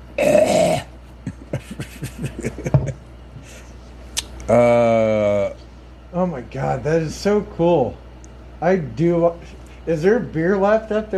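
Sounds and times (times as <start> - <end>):
sick person coughing harshly: 0.2 - 2.9
laughter: 1.3 - 3.7
speech: 4.5 - 5.2, 6.2 - 8.0, 8.6 - 11.1.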